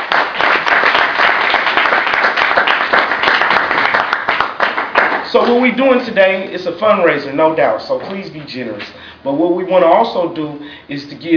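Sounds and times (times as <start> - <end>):
crowd applauding: 0.0 - 5.6
speech: 5.3 - 11.3.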